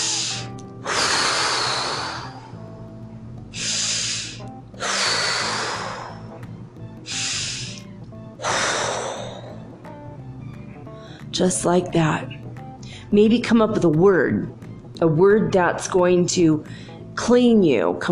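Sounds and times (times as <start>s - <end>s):
deep cleansing breaths: 0.0s - 2.8s, 3.5s - 9.8s, 10.6s - 11.3s, 12.7s - 13.1s, 16.7s - 17.1s
speech: 11.4s - 12.4s, 13.1s - 18.1s.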